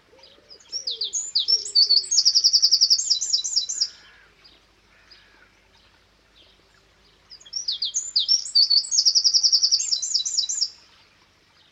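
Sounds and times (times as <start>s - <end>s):
birds cooing: 0.0s - 2.9s
wren singing: 0.2s - 4.0s, 7.3s - 10.8s.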